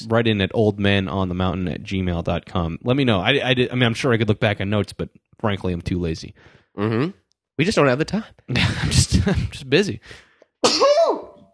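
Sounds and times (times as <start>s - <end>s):
speech: 0.0s - 10.9s
person sneezing loudly: 10.6s - 11.4s.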